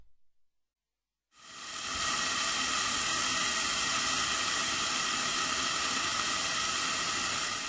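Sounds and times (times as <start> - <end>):
carrots stewing under a lid in a pan over low heat: 1.4 - 7.6.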